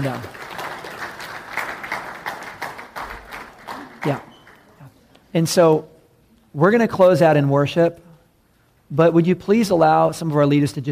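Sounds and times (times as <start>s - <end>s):
speech: 0.0s - 0.4s, 4.0s - 4.3s, 5.3s - 5.9s, 6.6s - 8.0s, 8.9s - 10.8s
audience clapping: 0.0s - 4.9s.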